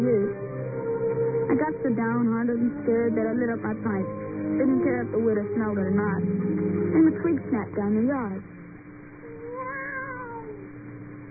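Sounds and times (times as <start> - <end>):
faint steady hum: 0.0 - 11.2
speech: 1.6 - 8.5
cat meowing: 9.3 - 10.7.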